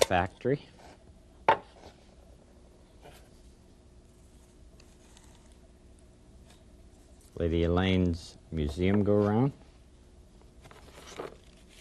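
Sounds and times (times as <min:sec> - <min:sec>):
speech: 0:00.1 - 0:00.8, 0:07.4 - 0:09.6
paper being crinkled and crumpled: 0:10.7 - 0:11.8.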